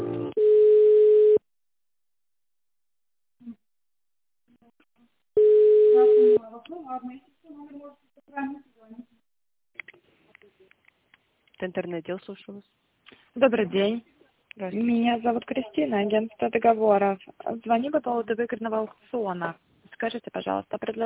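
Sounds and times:
telephone line tones while a call is transferred: 0.4 - 1.4, 5.4 - 6.4
speech: 11.7 - 21.0.

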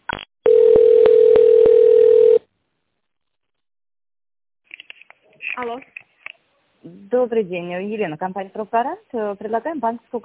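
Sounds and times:
telephone tone with ticks while a business call is transferred: 0.5 - 2.5
speech: 7.1 - 10.2.

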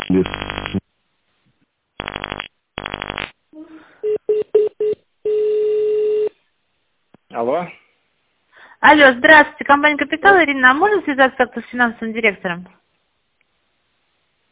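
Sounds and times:
long steady telephone tone: 0.0 - 0.8, 2.0 - 3.2, 4.0 - 6.4
speech: 0.1 - 0.4, 8.8 - 12.8.

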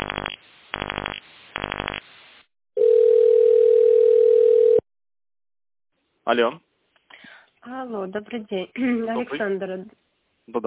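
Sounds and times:
telephone tone-mode dialing beeps on a bank's phone system: 2.8 - 4.8
speech: 6.3 - 6.7, 7.6 - 10.6.

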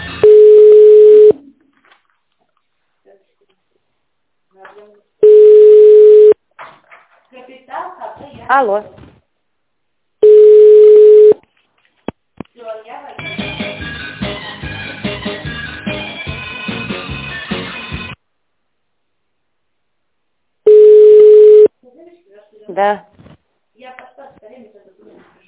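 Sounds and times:
busy melodic telephone tones: 0.1 - 1.4, 5.2 - 6.4, 10.2 - 11.4, 20.7 - 21.7
long steady telephone line beep: 0.2 - 1.4, 5.2 - 6.4, 10.2 - 11.4, 20.7 - 21.7
speech: 8.5 - 9.0, 22.8 - 23.1.

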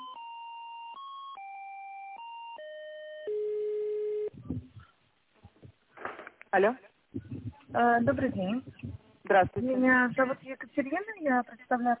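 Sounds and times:
telephone line tones while a call is being connected: 0.0 - 4.4
speech: 6.5 - 11.9.

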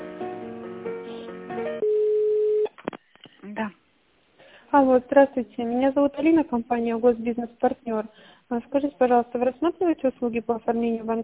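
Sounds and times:
telephone ringing tone as a call is transferred to a tender department: 1.8 - 2.7
speech: 4.8 - 11.2.

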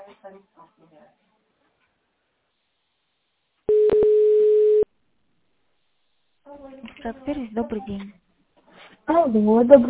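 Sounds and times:
speech: 0.1 - 1.4, 6.4 - 8.2, 9.1 - 9.8
telephone line tone during dialing of a phone number: 3.7 - 4.9.

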